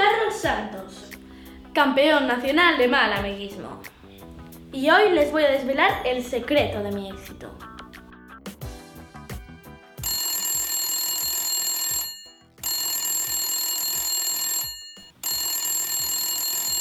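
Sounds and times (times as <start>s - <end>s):
speech: 1.8s - 4.0s, 4.7s - 7.7s
telephone ringtone: 10.0s - 16.7s.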